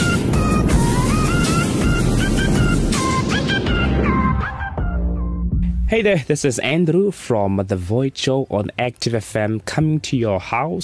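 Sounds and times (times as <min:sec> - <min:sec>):
Apollo 11 rocket launch roar at liftoff: 0:00.0 - 0:04.8
speech: 0:05.9 - 0:10.8.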